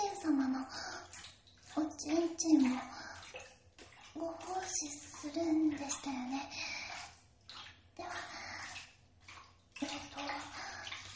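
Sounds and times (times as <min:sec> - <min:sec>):
water rinsing off a body in a bath: 0:00.0 - 0:11.1
speech: 0:02.0 - 0:03.0, 0:04.2 - 0:06.7.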